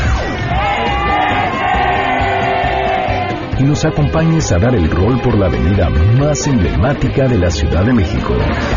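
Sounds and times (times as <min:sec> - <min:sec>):
large crowd yelling a traditional group shout: 0:00.0 - 0:03.6
speech: 0:03.6 - 0:08.7.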